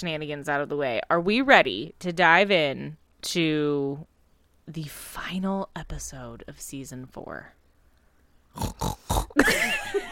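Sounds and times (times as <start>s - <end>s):
speech: 0.0s - 4.1s, 4.7s - 7.6s, 8.5s - 10.0s
person imitating pig grunting oinks and squealing snort: 8.5s - 9.4s
laughter-like warble: 9.4s - 10.0s.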